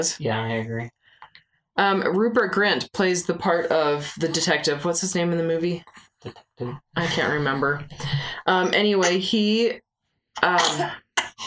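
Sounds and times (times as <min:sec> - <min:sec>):
speech: 0:00.0 - 0:01.0, 0:01.8 - 0:09.8, 0:10.4 - 0:11.4
person sneezing: 0:10.6 - 0:11.4.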